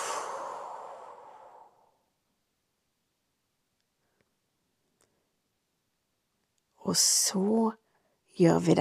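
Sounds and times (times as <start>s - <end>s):
long breathy exhale: 0.0s - 1.9s
speech: 6.9s - 7.8s, 8.4s - 8.7s.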